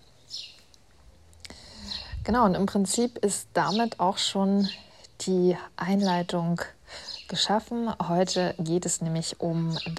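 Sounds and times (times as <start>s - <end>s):
birds chirping outdoors on a windy day: 0.0s - 0.8s, 1.5s - 9.9s
soft breathy noise: 0.6s - 2.4s, 4.6s - 5.8s, 6.7s - 7.3s
speech: 2.3s - 9.9s.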